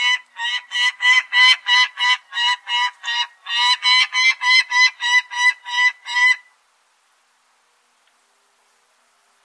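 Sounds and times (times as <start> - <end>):
peregrine falcon cackling: 0.0 - 6.5.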